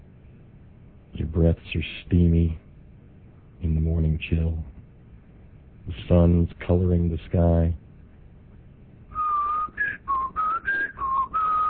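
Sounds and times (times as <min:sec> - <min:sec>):
speech: 0:01.3 - 0:02.6, 0:03.6 - 0:04.8, 0:05.9 - 0:07.8
person whistling a short breathy tune: 0:09.1 - 0:11.6.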